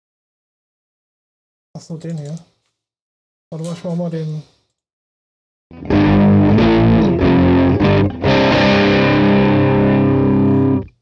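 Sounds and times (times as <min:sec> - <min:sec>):
speech: 0:01.8 - 0:02.5, 0:03.5 - 0:04.6
driven electric guitar played straight through the amp with no effect pedal: 0:05.7 - 0:10.9.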